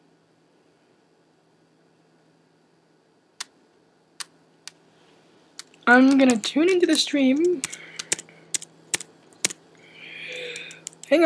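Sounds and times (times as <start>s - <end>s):
low steady hum: 0.0s - 11.2s
computer keyboard clicks: 5.6s - 9.6s, 10.3s - 11.2s
speech: 5.9s - 7.9s.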